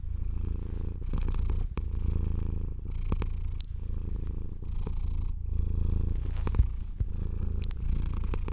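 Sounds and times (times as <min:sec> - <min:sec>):
cat purring: 0:00.0 - 0:08.5.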